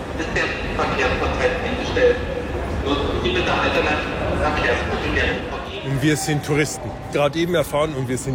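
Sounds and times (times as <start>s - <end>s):
murmur of many voices echoing in a large train station hall: 0.0s - 8.3s
speech: 0.2s - 8.3s.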